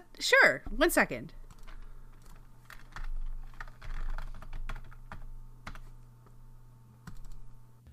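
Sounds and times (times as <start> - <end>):
speech: 0.2 - 1.4
rapid typing on a computer keyboard: 1.5 - 5.9, 7.0 - 7.4.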